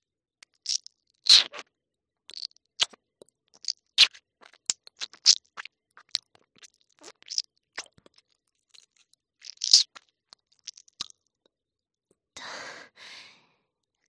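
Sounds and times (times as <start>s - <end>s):
wet chewing and smacking mouth noises: 0.4s - 1.6s, 2.3s - 11.2s
soft breathy exhalations: 12.4s - 13.5s.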